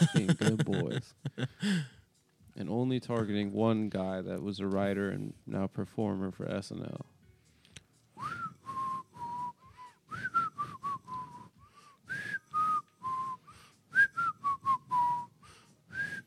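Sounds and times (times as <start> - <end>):
laughter: 0.0 - 1.8
speech: 0.3 - 1.9, 2.6 - 7.2
person whistling a melody: 8.2 - 16.2.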